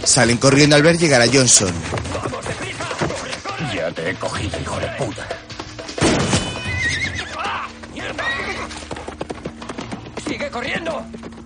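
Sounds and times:
speech: 0.0s - 2.4s, 4.0s - 5.4s, 10.6s - 11.4s
clip-clop of horse hooves running: 0.0s - 11.4s
horse whinnying during a chase on horseback: 6.4s - 9.0s.

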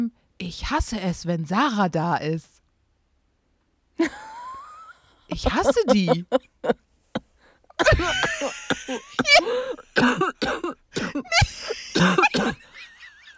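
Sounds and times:
speech: 0.4s - 2.6s, 4.0s - 4.3s, 5.3s - 6.9s, 7.8s - 12.2s
laughter: 4.0s - 6.8s, 7.8s - 9.6s, 11.2s - 13.3s
loud coughing fit: 5.4s - 6.4s, 7.2s - 12.8s
person gasping: 9.2s - 9.9s.

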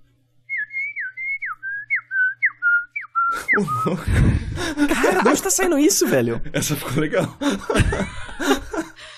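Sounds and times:
person whistling an imitation of a bird call: 0.5s - 3.9s
noisy breathing: 3.3s - 5.0s, 7.4s - 9.1s
person laughing: 3.3s - 9.0s
speech: 3.6s - 8.6s.

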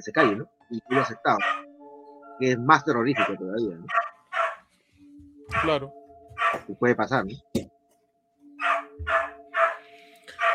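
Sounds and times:
speech: 0.0s - 1.6s, 2.4s - 4.0s, 5.5s - 6.0s, 6.6s - 7.5s
dog barking: 0.1s - 1.7s, 3.1s - 4.7s, 6.4s - 6.7s, 8.6s - 10.5s.

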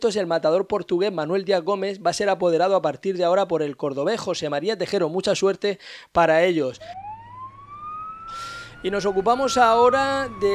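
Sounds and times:
speech: 0.0s - 7.1s, 8.8s - 10.5s
ambulance siren wailing: 6.8s - 10.5s
low rumble of traffic: 6.8s - 10.5s.

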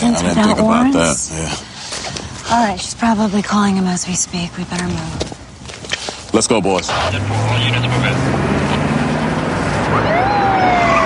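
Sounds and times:
speech: 0.2s - 1.7s, 2.5s - 5.4s, 6.3s - 8.6s, 9.9s - 10.4s
dense rumble of police car engines: 2.0s - 11.0s
police car tires screeching: 6.4s - 11.0s
police siren wail: 9.8s - 11.0s.

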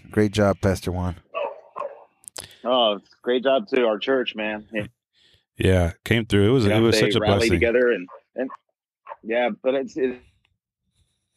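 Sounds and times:
speech: 0.2s - 1.2s, 2.6s - 5.0s, 5.6s - 8.6s, 9.2s - 10.3s
dog barking: 1.3s - 2.2s.

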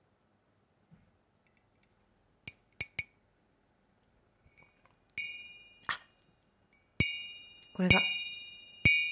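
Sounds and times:
crystal glass holding melted ice clinking: 5.2s - 5.9s, 6.8s - 9.1s
speech: 7.8s - 8.2s.

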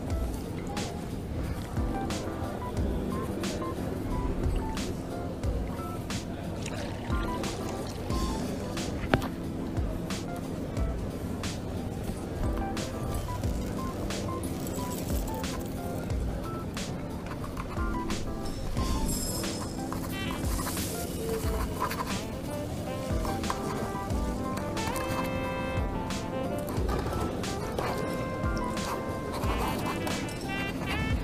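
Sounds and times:
voices in a coffee shop: 0.0s - 31.2s
cutlery in a coffee shop: 18.6s - 25.5s, 26.5s - 31.0s.

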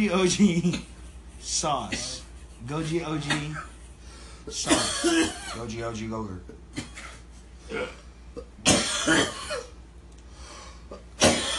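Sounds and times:
speech: 0.0s - 3.7s, 4.4s - 6.9s, 7.7s - 9.4s
person coughing in a rough hacking fit: 1.8s - 2.2s, 3.2s - 3.8s, 4.5s - 5.6s, 6.7s - 9.8s, 10.9s - 11.5s.

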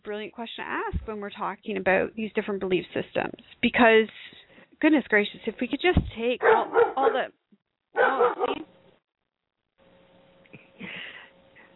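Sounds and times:
speech: 0.0s - 8.7s
dog barking: 6.4s - 7.3s, 8.0s - 8.7s.

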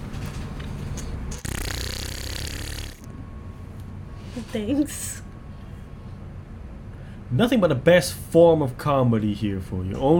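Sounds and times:
voice imitating a fart resembling drilling: 1.3s - 3.1s
speech: 4.4s - 5.3s, 7.3s - 10.1s.

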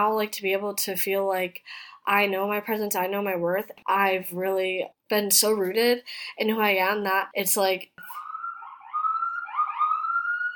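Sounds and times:
speech: 0.0s - 8.2s
police sirens wailing on a New York street: 8.1s - 10.5s.

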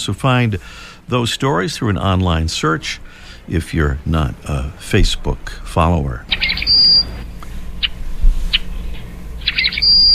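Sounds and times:
speech: 0.0s - 6.8s
Rusty Blackbird giving squeaky creaky call notes: 6.3s - 7.2s, 7.8s - 10.1s.

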